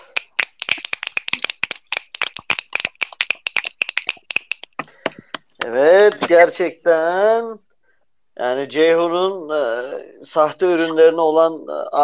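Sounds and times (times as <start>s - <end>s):
applause with quick sharp claps: 0.0s - 4.8s
speech: 5.6s - 7.6s, 8.4s - 12.0s.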